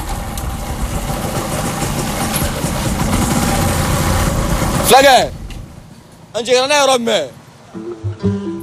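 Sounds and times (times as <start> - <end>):
motorcycle engine idling while maneuvering into a car park: 0.1 - 4.9
speech: 4.9 - 5.3, 6.3 - 8.3.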